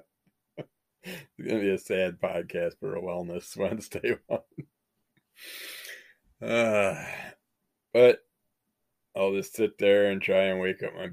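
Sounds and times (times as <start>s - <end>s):
speech: 0.6s - 4.6s, 6.4s - 8.3s, 9.2s - 11.1s
person yawning: 5.8s - 7.3s.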